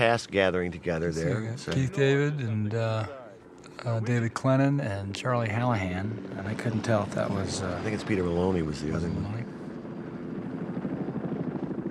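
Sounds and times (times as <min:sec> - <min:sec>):
speech: 0:00.0 - 0:03.2, 0:03.8 - 0:09.6
helicopter engine low roar: 0:00.0 - 0:11.8
helicopter rotor blades beating: 0:05.5 - 0:11.8.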